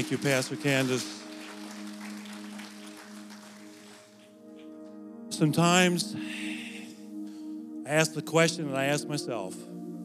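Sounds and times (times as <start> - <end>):
speech: 0.0 - 1.2, 5.4 - 6.4, 7.9 - 9.8
audience clapping: 0.0 - 4.7
sustained low keyboard or organ chord: 0.0 - 10.0.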